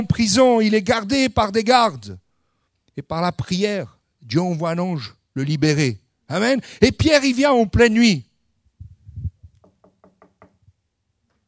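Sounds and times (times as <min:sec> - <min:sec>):
speech: 0:00.0 - 0:02.2, 0:03.0 - 0:08.3
knocking on a door: 0:09.6 - 0:10.6.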